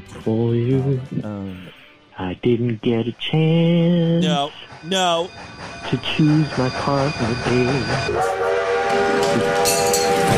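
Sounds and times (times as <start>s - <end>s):
speech: 0.1s - 10.3s
faint rumble of rail noise: 1.2s - 10.3s
train whistle blowing: 4.2s - 10.3s.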